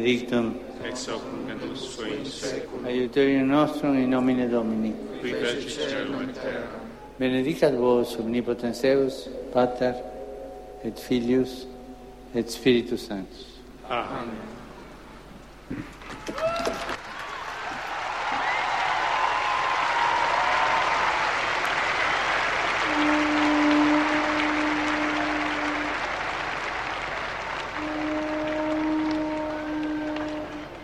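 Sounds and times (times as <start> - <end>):
speech: 0.0 - 10.1, 10.8 - 11.7, 12.3 - 14.6, 15.7 - 16.5
large crowd applauding: 15.8 - 30.8.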